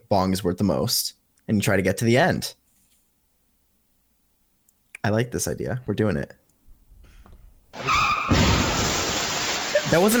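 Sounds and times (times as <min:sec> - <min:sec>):
speech: 0:00.1 - 0:02.6, 0:05.0 - 0:06.4, 0:07.7 - 0:08.0, 0:09.9 - 0:10.1
car tire screech sound effect: 0:07.8 - 0:10.0
heavy crunching car crash sound effect: 0:07.8 - 0:10.1
noisy crash debris rumbling: 0:07.8 - 0:10.1.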